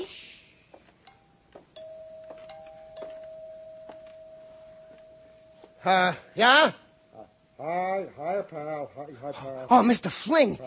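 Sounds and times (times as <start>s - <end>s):
doorbell chiming with bright ringing tones: 1.1s - 7.2s
speech: 5.8s - 6.8s, 7.6s - 10.6s.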